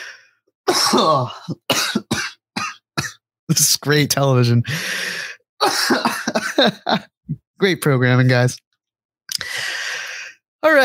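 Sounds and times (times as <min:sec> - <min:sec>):
harsh raspy hacking cough: 0:00.7 - 0:03.2, 0:05.6 - 0:07.0
speech: 0:00.9 - 0:01.9, 0:03.5 - 0:08.7, 0:10.6 - 0:10.8.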